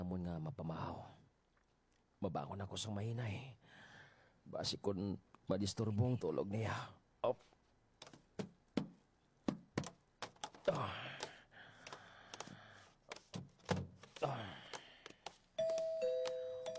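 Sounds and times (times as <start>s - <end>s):
speech: 0.1s - 1.2s, 2.2s - 7.6s, 10.7s - 11.2s
sharp taps and knocks: 8.0s - 16.7s
two-note electronic doorbell chime: 15.6s - 16.7s.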